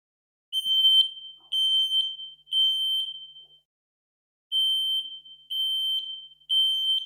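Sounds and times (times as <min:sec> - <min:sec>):
shrill piercing fire alarm blaring in a three-beep pattern: 0:00.6 - 0:03.6, 0:04.5 - 0:07.0.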